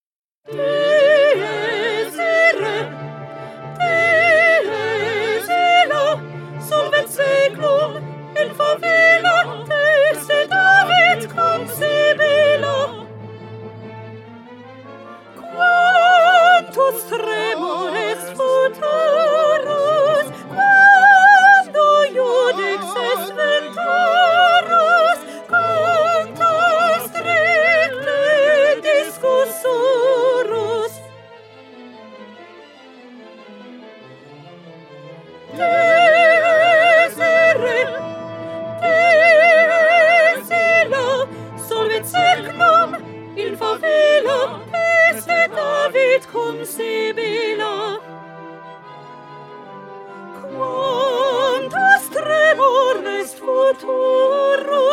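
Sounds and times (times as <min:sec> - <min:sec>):
soprano singing: 0:00.5 - 0:13.9, 0:14.7 - 0:31.3, 0:35.2 - 0:54.9.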